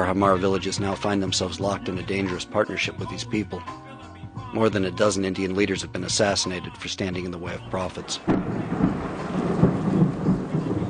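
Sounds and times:
speech: 0.0 - 3.9, 4.5 - 9.3
fierce rain pouring at night over a village: 8.1 - 10.8
low rumbling swells beneath the rain: 8.2 - 10.8.

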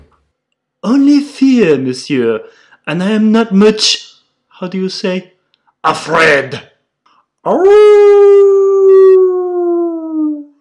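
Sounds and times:
speech: 0.8 - 6.7, 7.4 - 8.4
large dog howling: 7.5 - 10.5.

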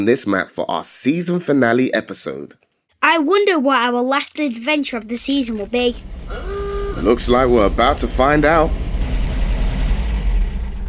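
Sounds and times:
speech: 0.0 - 8.8
vintage Jaguar car engine idling with a deep rumble: 5.5 - 10.8.

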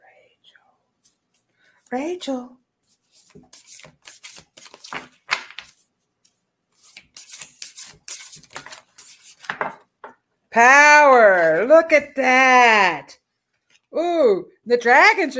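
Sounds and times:
speech: 1.9 - 2.6, 10.6 - 13.2, 13.9 - 15.3
tarot cards being shuffled and handled: 2.9 - 9.8.

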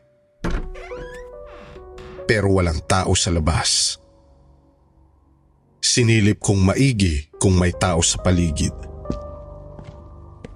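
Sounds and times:
house door hinges squealing creak: 0.4 - 2.4
speech: 2.3 - 4.0, 6.0 - 9.2.

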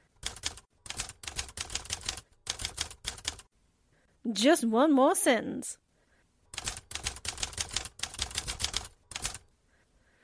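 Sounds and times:
mechanical typewriter keystrokes typing a column: 0.2 - 3.4, 6.6 - 9.4
speech: 4.3 - 5.8.

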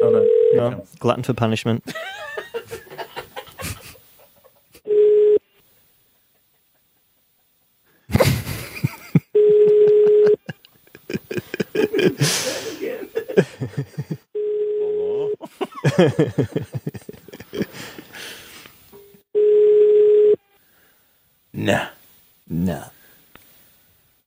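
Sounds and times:
outgoing phone call ringing tone: 0.0 - 0.7, 4.9 - 5.5, 9.4 - 10.5, 14.3 - 15.4, 19.3 - 20.4
speech: 0.6 - 2.2, 16.0 - 16.9
laughter: 1.9 - 4.8, 6.2 - 14.3, 15.1 - 18.3.

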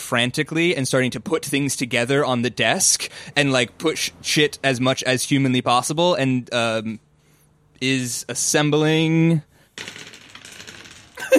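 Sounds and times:
speech: 0.1 - 7.0, 7.8 - 10.1
stack of dice toppling and clattering across a surface: 9.8 - 11.3.

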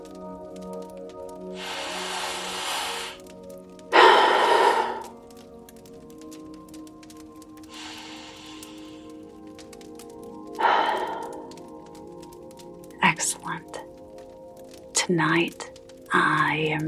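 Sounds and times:
deep breaths during a guided session: 1.5 - 3.3, 3.9 - 5.2, 7.7 - 9.3, 10.5 - 11.7
speech: 15.1 - 15.6, 16.6 - 16.8.

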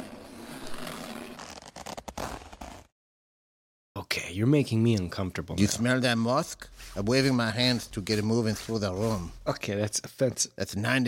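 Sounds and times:
jumpsuit zipper being pulled down: 0.0 - 2.9
speech: 4.4 - 11.0.

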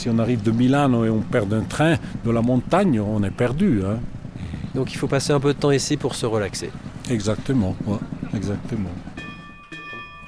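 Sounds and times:
speech: 0.0 - 9.1
phone ringtone that sounds like a railway station bell: 9.2 - 10.2.

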